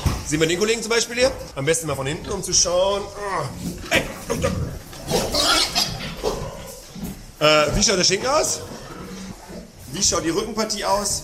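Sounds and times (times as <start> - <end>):
pigs grunting and snorting in a barn: 0.0 - 11.2
speech: 0.3 - 4.7, 7.4 - 8.8, 10.0 - 11.2
pig squealing: 3.9 - 6.8.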